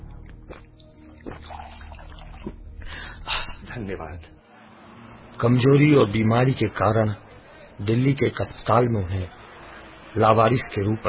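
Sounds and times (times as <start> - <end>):
water pouring: 0.4 - 2.9
speech: 3.8 - 4.5, 5.4 - 7.2, 7.8 - 9.4, 10.1 - 11.0.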